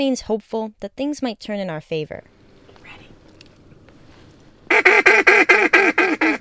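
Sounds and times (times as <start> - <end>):
speech: 0.0 - 3.0
mallard ducks quacking: 4.6 - 6.3.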